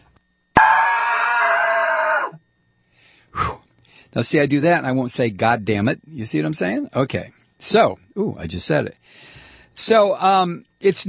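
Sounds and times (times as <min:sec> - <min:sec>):
man screaming in frustration: 0:00.6 - 0:02.4
speech: 0:04.1 - 0:11.0.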